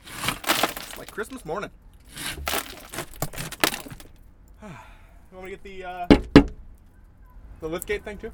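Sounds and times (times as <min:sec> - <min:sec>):
glass being smashed: 0:00.0 - 0:01.4, 0:02.2 - 0:04.2
speech: 0:01.2 - 0:02.2, 0:04.6 - 0:06.5, 0:07.6 - 0:08.3.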